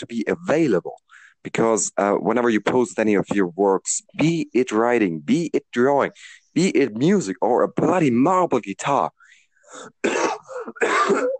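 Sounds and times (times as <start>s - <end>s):
speech: 0.0s - 11.3s
person coughing: 9.8s - 11.3s.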